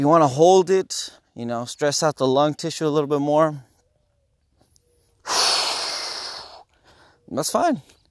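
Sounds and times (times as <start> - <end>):
speech: 0.0 - 3.7, 5.2 - 5.5, 7.3 - 8.0
runner letting out a deep exhale while running: 5.2 - 7.2.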